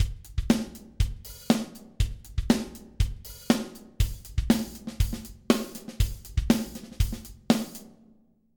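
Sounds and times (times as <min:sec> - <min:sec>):
drums with stereo room reverb: 0:00.0 - 0:08.0.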